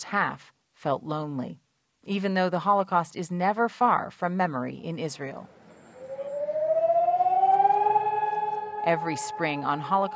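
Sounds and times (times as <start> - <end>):
speech: 0.0 - 5.6, 8.8 - 10.1
civil defense siren wailing on Holocaust Remembrance Day in Israel: 5.8 - 10.1.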